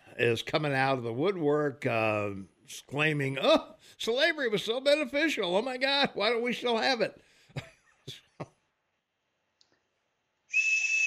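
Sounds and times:
speech: 0:00.2 - 0:08.2
loud steady hissy whistle tone: 0:10.5 - 0:11.0.

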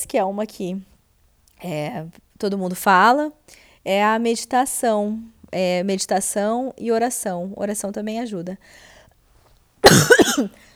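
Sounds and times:
speech: 0:00.1 - 0:00.9, 0:01.6 - 0:08.9, 0:09.8 - 0:10.7
loud rough throaty cough: 0:09.8 - 0:10.6.

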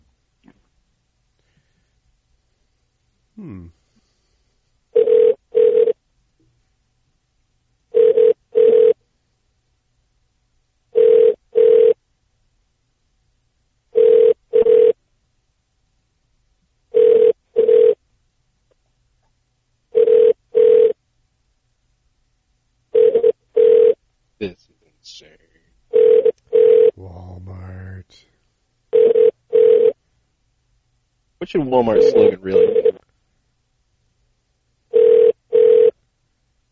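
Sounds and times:
speech: 0:03.4 - 0:03.8, 0:31.6 - 0:32.9
telephone ringback tone of double rings while a call is redirected: 0:05.0 - 0:06.0, 0:08.0 - 0:09.0, 0:11.0 - 0:12.0, 0:14.0 - 0:15.0, 0:17.0 - 0:18.0, 0:20.0 - 0:21.0, 0:23.0 - 0:24.0, 0:25.9 - 0:26.9, 0:28.9 - 0:30.0, 0:31.9 - 0:33.0, 0:34.9 - 0:35.9.

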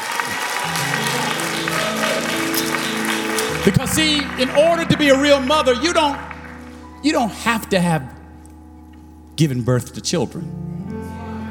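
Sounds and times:
congregation applause: 0:00.0 - 0:07.6
sustained low musical tone: 0:00.7 - 0:11.4
speech: 0:03.6 - 0:06.3, 0:07.0 - 0:08.2, 0:09.4 - 0:10.7.

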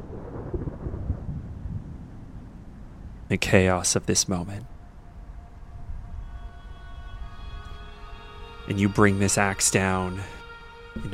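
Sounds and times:
low rolling thunder rumbling: 0:00.0 - 0:06.3
faint wash of rain: 0:00.0 - 0:11.1
speech: 0:03.3 - 0:04.8, 0:08.7 - 0:10.4, 0:11.0 - 0:11.1.

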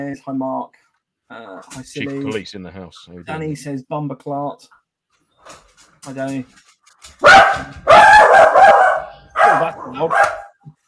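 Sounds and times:
speech: 0:00.0 - 0:04.8, 0:05.4 - 0:08.9, 0:09.5 - 0:10.8
dog barking and yelping: 0:07.2 - 0:10.6.

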